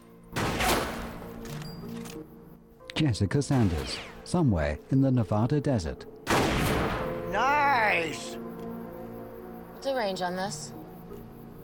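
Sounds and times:
gunshot on a shooting range: 0.4s - 1.2s, 6.3s - 7.2s
speech: 3.0s - 6.2s, 7.3s - 8.5s, 9.8s - 10.8s.

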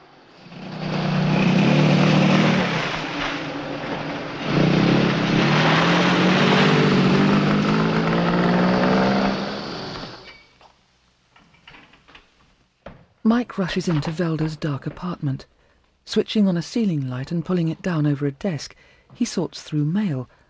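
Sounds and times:
car engine droning as the car turns around on a garage forecourt: 0.0s - 10.3s
speech: 13.3s - 20.4s.

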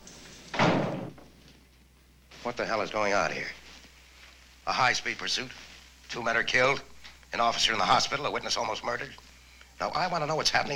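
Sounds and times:
office door shut angrily: 0.5s - 1.4s
speech: 2.5s - 3.6s, 4.7s - 9.2s, 9.8s - 10.7s.

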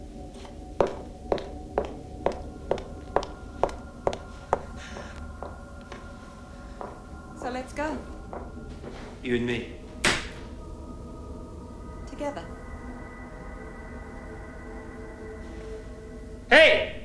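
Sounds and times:
footsteps crossing toward a door: 0.2s - 10.6s
speech: 9.3s - 9.8s.

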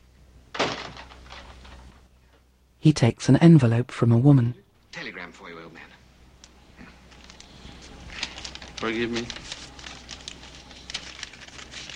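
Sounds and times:
opening door scraping and rustling: 0.6s - 2.1s
speech: 2.8s - 5.9s, 8.8s - 9.5s.

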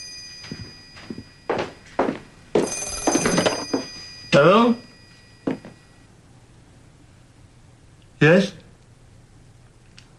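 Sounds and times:
telephone bell ringing: 0.0s - 6.1s
soft footsteps: 0.3s - 4.2s, 5.1s - 5.8s
speech: 4.4s - 4.8s.

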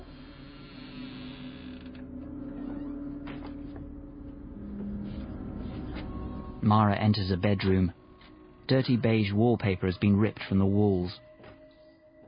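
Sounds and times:
door creaking open: 0.0s - 6.6s
speech: 6.6s - 8.0s, 8.7s - 11.3s.

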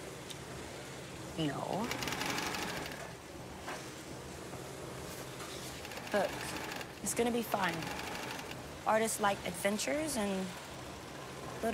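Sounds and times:
speech: 1.4s - 2.3s, 6.1s - 8.1s, 8.8s - 10.6s
fabric being sewn at a workstation: 1.8s - 3.2s, 5.6s - 8.8s.

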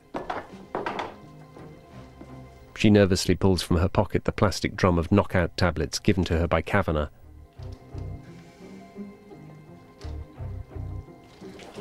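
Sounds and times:
bowls set down on a table in a motel kitchen: 0.2s - 1.2s
speech: 2.8s - 7.2s.

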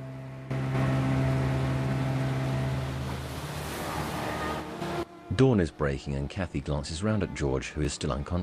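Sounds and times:
broad rushing wash of water: 0.0s - 5.1s
motorboat engine droning: 0.0s - 6.3s
speech: 5.4s - 8.4s.

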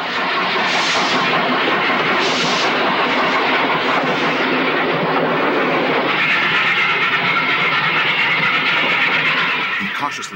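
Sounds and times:
rumbling rolling stock of a steam train: 0.0s - 10.3s
hissing steam of a steam train pulling out of a station: 0.1s - 6.5s.

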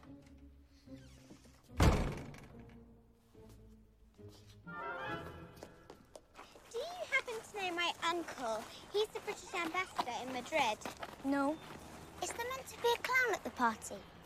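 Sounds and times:
door shutting with a heavy thud: 1.7s - 2.8s
shuffling and movement: 5.5s - 14.2s
speech: 7.9s - 14.1s.

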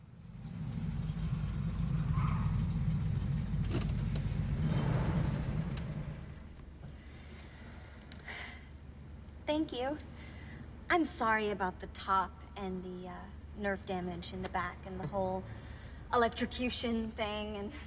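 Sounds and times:
car driving with a low engine rumble: 0.0s - 7.0s
road noise: 0.0s - 8.0s
speech: 9.5s - 10.3s, 10.9s - 17.8s.

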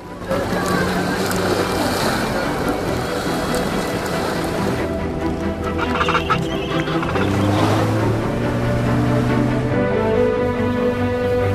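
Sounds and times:
small inflatable rubber dinghy outboard engine droning: 0.0s - 11.5s
water splashing and hissing against the dinghy hull: 0.1s - 8.9s.

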